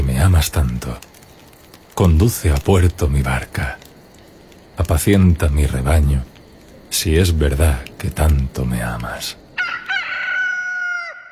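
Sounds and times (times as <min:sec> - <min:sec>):
speech: 0:00.2 - 0:01.1, 0:02.0 - 0:03.8, 0:04.8 - 0:06.3, 0:06.9 - 0:09.4
rooster crowing: 0:09.6 - 0:11.3.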